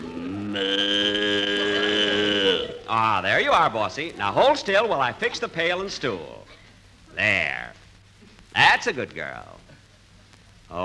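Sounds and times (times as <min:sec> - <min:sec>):
cow mooing: 0:00.0 - 0:02.8
speech: 0:00.5 - 0:01.2, 0:02.9 - 0:06.5, 0:07.2 - 0:07.8, 0:08.6 - 0:09.6.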